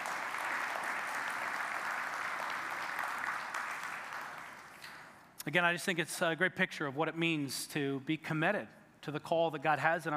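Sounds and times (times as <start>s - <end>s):
church congregation applauding after a prayer: 0.0s - 5.2s
speech: 5.5s - 10.1s.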